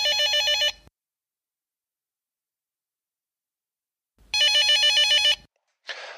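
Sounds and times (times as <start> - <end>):
telephone with electronic trilling bell ringing: 0.0 - 0.9, 4.3 - 5.5.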